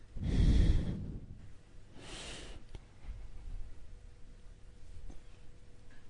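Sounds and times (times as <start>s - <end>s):
deep breath in through the nose and out through the mouth: 0.2s - 2.6s.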